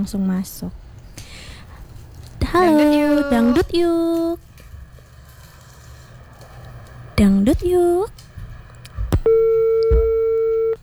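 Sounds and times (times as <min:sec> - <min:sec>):
speech: 0:00.0 - 0:00.9, 0:02.5 - 0:04.4, 0:07.2 - 0:08.2
telephone busy tone after a phone-in call is cut off: 0:09.2 - 0:10.8.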